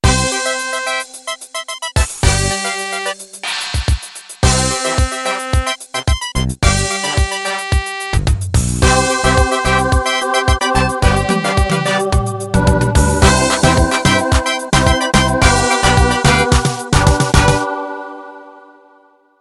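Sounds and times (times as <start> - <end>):
song intro: 0.0 - 19.2.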